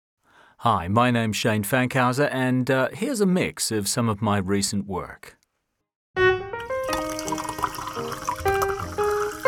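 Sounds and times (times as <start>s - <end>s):
speech: 0.6s - 5.4s
running natural spring water: 6.8s - 9.4s.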